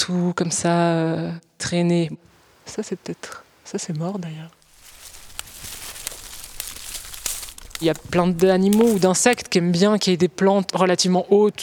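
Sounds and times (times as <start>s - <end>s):
speech: 0.0s - 4.6s, 7.8s - 11.6s
steady rustle and crinkle of dead plant stems: 2.3s - 9.5s
dry half-rotten dead branches snapped by hand: 3.2s - 9.6s.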